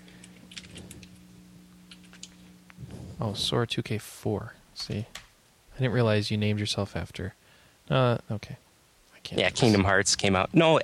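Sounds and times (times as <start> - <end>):
steady low electrical hum: 0.0 - 10.8
typing on a computer keyboard to enter an online game chat message: 0.3 - 1.0, 1.9 - 2.4
speech: 3.2 - 5.2, 5.8 - 8.6, 9.3 - 10.8.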